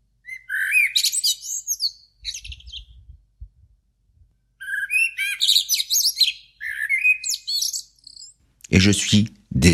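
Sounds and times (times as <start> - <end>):
blackbirds singing in a city before dawn: 0.2 - 3.1, 4.5 - 9.2
speech: 8.7 - 9.7.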